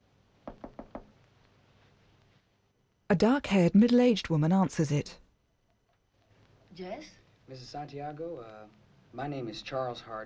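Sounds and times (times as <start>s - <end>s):
knocking on a door: 0.4s - 1.1s
speech: 3.1s - 5.2s, 6.8s - 10.2s.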